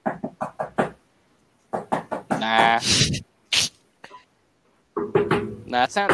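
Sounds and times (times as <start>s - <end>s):
knuckle knocking on a hollow aluminum desk: 0.0s - 1.0s, 1.7s - 2.8s, 5.0s - 6.1s
sharp noises: 2.3s - 3.8s
speech: 2.4s - 3.3s, 5.7s - 6.1s
person making a loud vocal exclamation: 2.4s - 3.7s.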